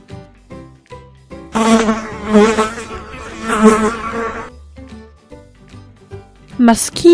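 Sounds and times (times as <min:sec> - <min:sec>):
fly buzzing: 0:01.6 - 0:04.5.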